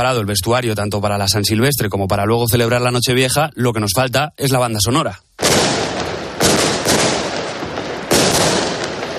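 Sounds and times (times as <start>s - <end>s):
speech: 0.0s - 5.8s
firecrackers and fireworks banging in a dense barrage: 5.4s - 9.1s
sharp blasts: 5.4s - 9.1s.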